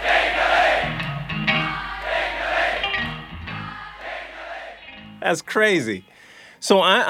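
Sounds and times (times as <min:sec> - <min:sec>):
large crowd at a live concert singing along: 0:00.0 - 0:05.2
speech: 0:05.3 - 0:07.0.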